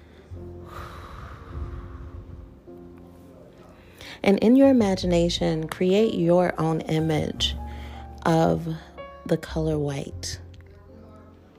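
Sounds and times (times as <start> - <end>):
slow deep breath in through the nose and out through the mouth: 0.0 - 2.7, 3.6 - 4.2, 7.6 - 8.2
steady low sustained tones: 0.0 - 3.9
speech: 4.2 - 7.6, 8.2 - 10.4.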